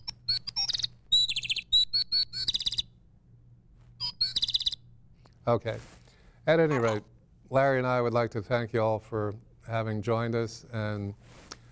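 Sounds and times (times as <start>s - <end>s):
pet bird chirping: 0.0s - 3.0s, 4.0s - 4.9s
low steady hum: 0.0s - 11.6s
speech: 5.5s - 11.2s.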